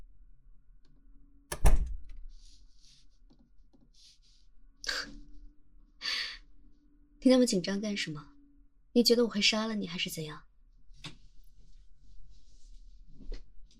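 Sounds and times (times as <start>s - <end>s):
heavy door shutting thud: 1.5s - 2.2s
speech: 7.2s - 8.3s, 9.0s - 11.2s.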